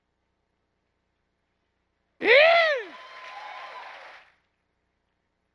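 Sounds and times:
steady roar of crowd noise: 0:02.2 - 0:04.2.

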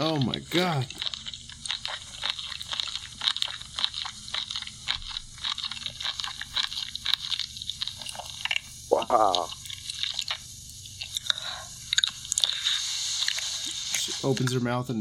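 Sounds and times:
speech: 0:00.0 - 0:01.1, 0:09.1 - 0:09.6, 0:14.2 - 0:14.9
woman chewing crunchy food loudly: 0:00.0 - 0:14.9
short spoken exclamation: 0:08.9 - 0:09.5.

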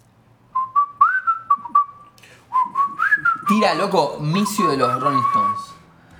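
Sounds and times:
person whistling a tune imitating a bird's song: 0:00.5 - 0:03.6, 0:04.3 - 0:05.9
speech: 0:03.5 - 0:05.7.

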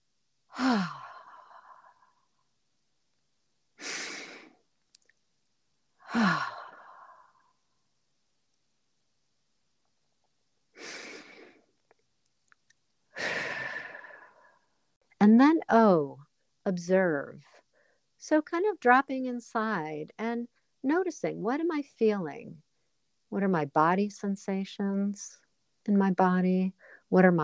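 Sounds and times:
slow deep breaths during a guided calming pause: 0:00.5 - 0:02.2, 0:06.0 - 0:07.6, 0:13.1 - 0:14.7
speech: 0:15.2 - 0:17.6, 0:18.2 - 0:22.7, 0:23.3 - 0:27.4.

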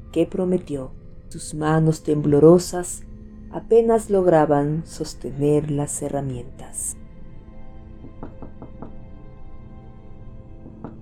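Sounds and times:
low hum: 0:00.0 - 0:09.3
speech: 0:00.1 - 0:07.0
knocking on a door: 0:08.1 - 0:09.0, 0:10.6 - 0:11.0.

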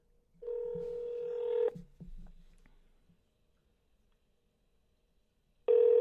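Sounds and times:
electronic phone tone redialing a dropped cell phone call: 0:00.4 - 0:01.8, 0:05.7 - 0:06.0.

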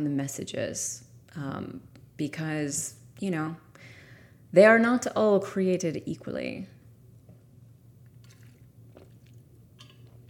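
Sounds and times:
speech: 0:00.0 - 0:03.9, 0:04.5 - 0:06.8
low steady hum: 0:00.0 - 0:10.2
person slurping and swallowing a drink of water: 0:08.0 - 0:10.2.

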